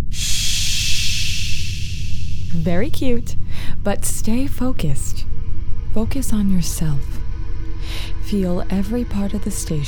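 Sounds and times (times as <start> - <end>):
slow deep breath: 0.2 - 2.6, 3.4 - 3.8
speech: 2.6 - 5.2, 5.9 - 7.2, 8.3 - 9.8.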